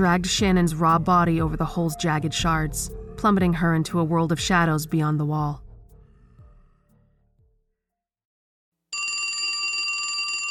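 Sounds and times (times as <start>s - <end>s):
speech: 0.0s - 5.6s
telephone bell ringing: 8.9s - 10.4s.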